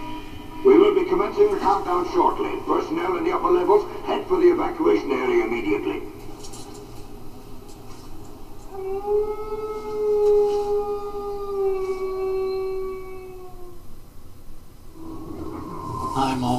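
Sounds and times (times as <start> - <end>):
low hum: 0.0 - 16.5
speech: 1.0 - 6.2, 8.8 - 9.7
wolf howling: 8.6 - 14.0, 14.9 - 16.5.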